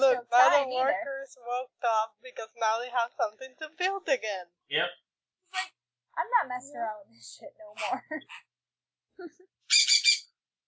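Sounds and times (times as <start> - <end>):
speech: 0.2 - 8.5, 9.2 - 9.8
bird-like chirping squeak with a warbling trilled texture: 9.7 - 10.2.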